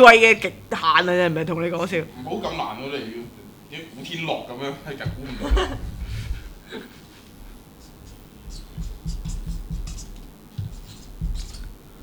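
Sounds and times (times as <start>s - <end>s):
speech: 0.0s - 5.9s, 6.7s - 7.0s
laughter: 5.1s - 7.6s
pen scratching across paper in short strokes: 7.8s - 12.0s.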